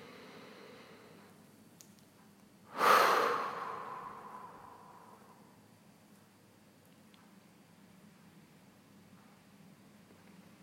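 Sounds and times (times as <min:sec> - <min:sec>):
deep breath exhale during a guided meditation: 0:00.0 - 0:01.3, 0:02.7 - 0:05.6.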